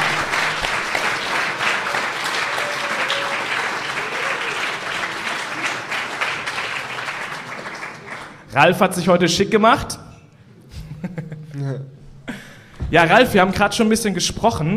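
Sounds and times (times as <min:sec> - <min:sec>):
applause from a live crowd: 0:00.0 - 0:08.5
speech: 0:08.6 - 0:10.0, 0:12.9 - 0:14.7.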